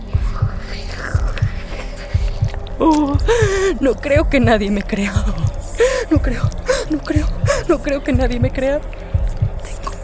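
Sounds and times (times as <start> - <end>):
deep heartbeat-like pulse in paired thumps through living room walls: 0.0 - 10.0
low hum: 0.0 - 10.0
speech: 2.8 - 9.1.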